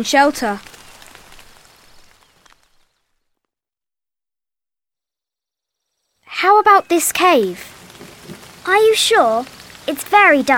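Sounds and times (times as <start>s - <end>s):
speech: 0.0s - 0.7s, 6.4s - 7.8s, 8.7s - 10.5s
steady rain hissing: 0.0s - 3.2s, 6.2s - 10.5s.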